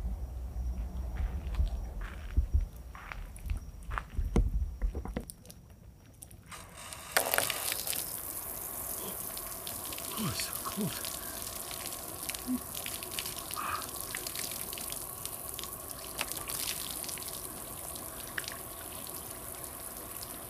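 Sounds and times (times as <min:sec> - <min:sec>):
footsteps walking along a dock: 0:00.8 - 0:05.2
steady rushing hiss: 0:06.5 - 0:20.4
speech: 0:10.8 - 0:11.1.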